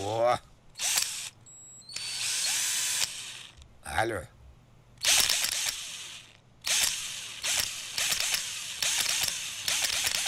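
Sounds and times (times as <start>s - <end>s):
speech: 0.3s - 1.0s, 4.0s - 4.4s
cordless screwdriver whirring: 0.8s - 3.6s, 5.0s - 10.2s.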